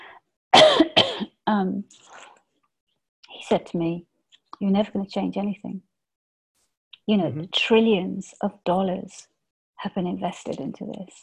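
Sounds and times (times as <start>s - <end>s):
person coughing: 0.6s - 1.4s
speech: 1.5s - 2.2s, 3.4s - 5.9s, 7.1s - 11.2s.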